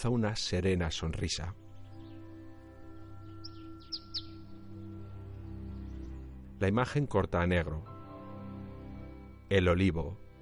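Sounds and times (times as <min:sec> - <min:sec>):
speech: 0:00.0 - 0:01.6, 0:06.6 - 0:07.9, 0:09.5 - 0:10.2
bird singing short bright chirps: 0:01.3 - 0:06.6.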